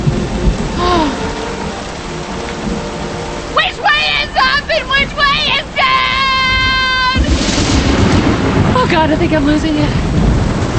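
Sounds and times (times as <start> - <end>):
heavy rain pouring: 0.0 - 10.7
speech: 9.0 - 10.2.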